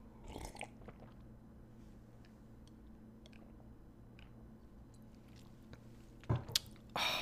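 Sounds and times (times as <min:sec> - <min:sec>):
sipping and swallowing water: 0:00.2 - 0:01.3.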